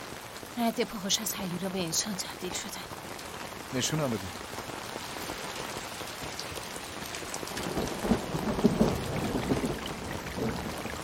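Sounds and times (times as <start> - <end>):
steady rain: 0.0 - 11.0
speech: 0.6 - 3.1, 3.7 - 4.6
thunder rumbling: 7.4 - 11.0.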